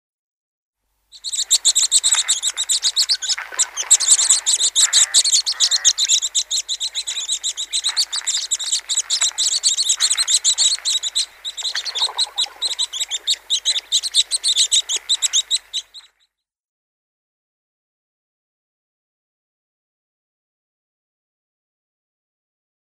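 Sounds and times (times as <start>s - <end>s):
African Silverbill calls: 1.1s - 16.2s.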